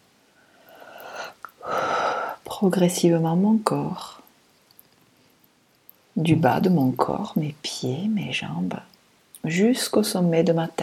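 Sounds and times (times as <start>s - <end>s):
deep breathing: 0.4s - 2.4s
speech: 2.6s - 4.2s, 6.2s - 10.8s.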